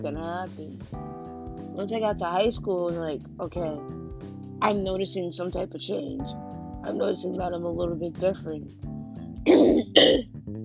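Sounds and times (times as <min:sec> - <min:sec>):
speech: 0:00.0 - 0:10.3
person coughing: 0:09.5 - 0:10.2.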